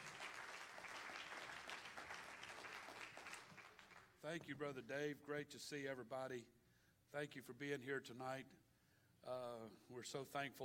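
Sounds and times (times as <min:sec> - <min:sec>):
crowd clapping: 0:00.0 - 0:04.2
speech: 0:04.2 - 0:08.6, 0:09.2 - 0:10.6.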